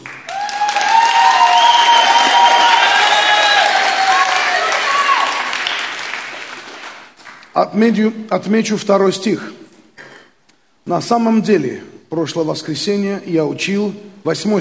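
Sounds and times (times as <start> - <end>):
crowd applause: 0.0 - 7.5
crowd calling out with raised voices: 0.3 - 5.8
speech: 7.7 - 9.6, 10.9 - 14.5.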